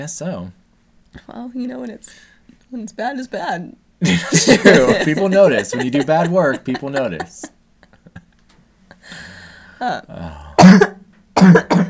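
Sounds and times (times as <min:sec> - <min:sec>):
speech: 0:00.0 - 0:07.6, 0:09.8 - 0:10.4
laughter: 0:04.0 - 0:08.3
loud harsh coughs: 0:10.6 - 0:11.8
wet throat clearing: 0:10.6 - 0:11.8.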